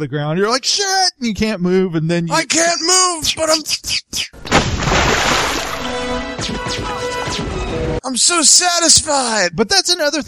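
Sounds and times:
speech: 0:00.0 - 0:10.2
stun grenade explosion in a film sound mix: 0:04.4 - 0:06.1
crackling, splashing debris: 0:04.5 - 0:06.2.

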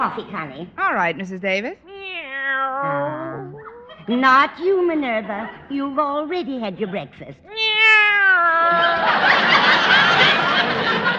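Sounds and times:
speech: 0:00.0 - 0:02.2, 0:02.8 - 0:03.2, 0:04.0 - 0:07.6
plump female cat meowing: 0:01.9 - 0:03.9, 0:07.4 - 0:09.0
laughter: 0:02.8 - 0:04.4, 0:08.6 - 0:11.1.

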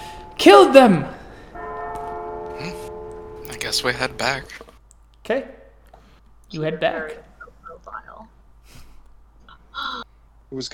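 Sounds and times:
bells chiming: 0:00.0 - 0:04.5
speech: 0:00.4 - 0:01.1, 0:03.7 - 0:04.6, 0:05.3 - 0:05.6, 0:06.5 - 0:07.3, 0:09.8 - 0:10.7.

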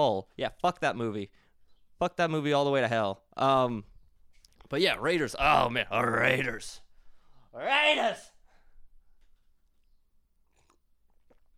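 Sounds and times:
speech: 0:00.0 - 0:01.4, 0:02.0 - 0:03.9, 0:04.7 - 0:06.8, 0:07.6 - 0:08.3
sipping a drink at the microphone: 0:09.8 - 0:11.5
wet slurps and mouth noises: 0:09.9 - 0:11.5.

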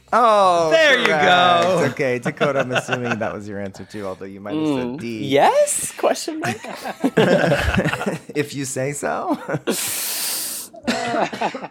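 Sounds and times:
speech: 0:00.1 - 0:10.1, 0:11.1 - 0:11.6
laughter: 0:00.8 - 0:04.1, 0:06.3 - 0:09.9, 0:10.8 - 0:11.6
person in a harsh coughing fit: 0:10.8 - 0:11.6.

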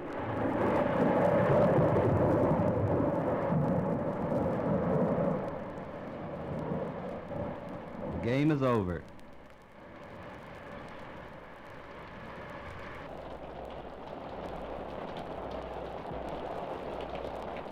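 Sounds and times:
steady rain spattering on surfaces: 0:00.0 - 0:17.7
thunder rumbling: 0:00.0 - 0:17.7
speech: 0:08.3 - 0:09.2.

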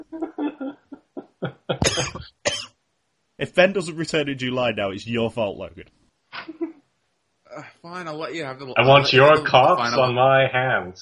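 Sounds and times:
laughter: 0:00.0 - 0:02.3, 0:06.4 - 0:06.8
speech: 0:01.8 - 0:02.3, 0:03.4 - 0:06.0, 0:07.8 - 0:11.0
fit of harsh rasping coughs: 0:01.8 - 0:02.7.

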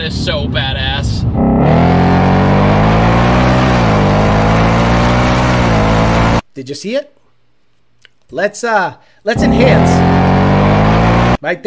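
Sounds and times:
speech: 0:00.0 - 0:01.6, 0:06.6 - 0:07.2, 0:08.3 - 0:10.5, 0:11.4 - 0:11.6
car engine revving at wide open throttle: 0:01.3 - 0:06.4, 0:09.4 - 0:11.4.

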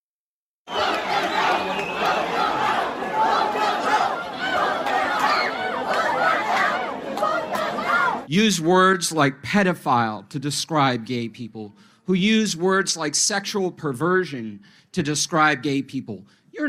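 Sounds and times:
large crowd of parents and protesters booing and jeering a speaker: 0:00.7 - 0:08.3
speech: 0:08.3 - 0:16.6.

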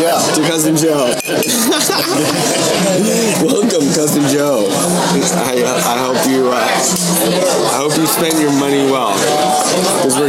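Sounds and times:
several voices talking and cheering loudly: 0:00.0 - 0:10.2
speech: 0:00.0 - 0:10.2
glasses clinking together in a toast: 0:01.1 - 0:02.2
laughter: 0:01.3 - 0:06.1.

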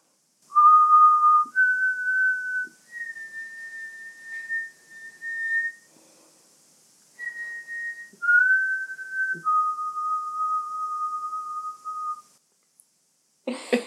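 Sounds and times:
slow eerie human whistling imitating a ghost's whistle: 0:00.5 - 0:05.9, 0:07.2 - 0:12.3.

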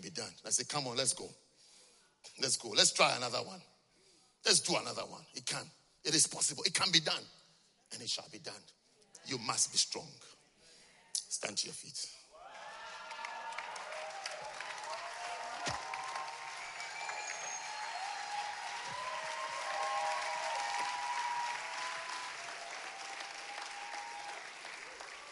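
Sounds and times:
speech: 0:00.0 - 0:01.5, 0:02.3 - 0:03.7, 0:04.4 - 0:10.4, 0:11.3 - 0:12.2
faint cheers: 0:12.4 - 0:25.3
sustained applause from a large crowd: 0:12.6 - 0:25.3.

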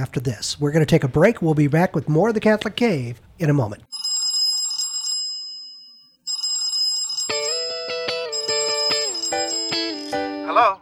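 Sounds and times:
speech: 0:00.0 - 0:03.9
shrill high-pitched telephone ring: 0:03.9 - 0:10.6
bright electronic melody of stepping tones: 0:07.6 - 0:10.5.

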